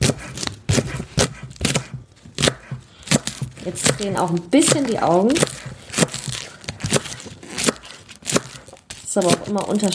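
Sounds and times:
knife chopping spring onions finely: 0.0s - 9.9s
speech: 3.7s - 5.7s, 9.2s - 9.9s.

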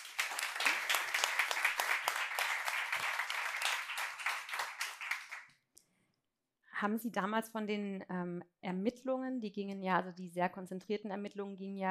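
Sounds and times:
audience applause: 0.0s - 5.6s
speech: 6.8s - 11.8s.

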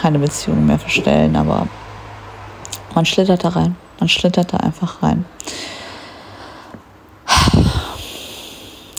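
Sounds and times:
speech: 0.1s - 1.9s, 2.9s - 5.7s
short deep breath drawn in: 5.5s - 8.9s.

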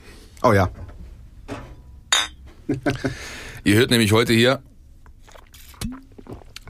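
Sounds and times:
speech: 0.4s - 0.8s, 2.7s - 4.7s
glasses of Radler clinking: 2.1s - 2.4s
slurping sip: 5.2s - 6.6s.

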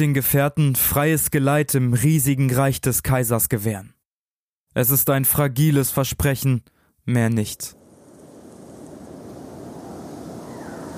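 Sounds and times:
speech: 0.0s - 4.0s, 4.7s - 7.8s
strong storm wind roaring: 7.7s - 10.9s.

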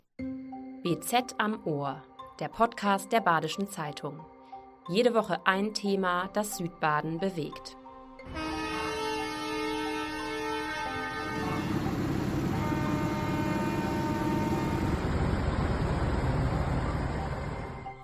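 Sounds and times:
speech: 0.8s - 8.4s
tractor horns blaring: 8.3s - 15.3s
rumble of heavy tractor engines moving past: 10.4s - 18.0s.

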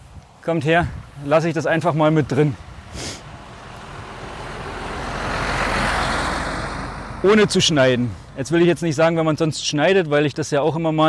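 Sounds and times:
speech: 0.4s - 3.1s, 7.2s - 11.0s
truck driving past: 2.7s - 8.9s.

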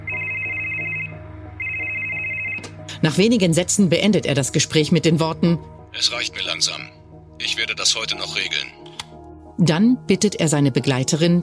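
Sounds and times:
car telephone ringing: 0.0s - 2.8s
speech: 3.0s - 8.8s, 9.6s - 11.4s.

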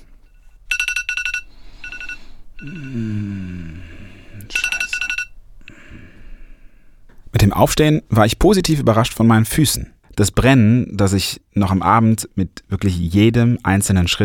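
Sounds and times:
alarm clock ringing in rapid electronic beeping bursts: 0.3s - 3.0s, 4.5s - 5.4s
speech: 2.6s - 3.6s, 7.4s - 14.2s
person giving a low sleepy groan: 2.6s - 4.8s.

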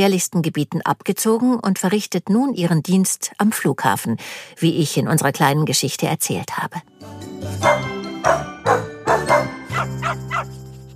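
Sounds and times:
speech: 0.0s - 9.4s
dog barking: 7.6s - 10.5s.

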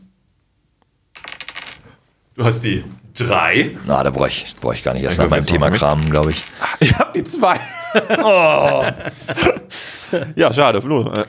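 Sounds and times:
dice clattering across a hard surface for a game: 1.2s - 2.0s, 5.5s - 6.8s
speech: 2.4s - 11.2s
laughter: 5.0s - 10.6s.

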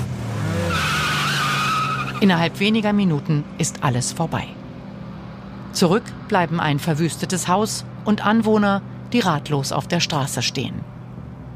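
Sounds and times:
car tires screeching: 0.0s - 3.3s
car engine revving hard and pulling away: 0.0s - 3.7s
speech: 2.2s - 4.6s, 5.8s - 10.9s.

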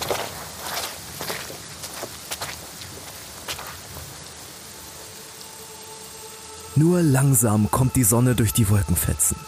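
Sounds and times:
footsteps trudging over soft wet grass: 0.0s - 4.2s
steady hiss of light rain: 0.0s - 9.4s
speech: 6.8s - 9.4s.

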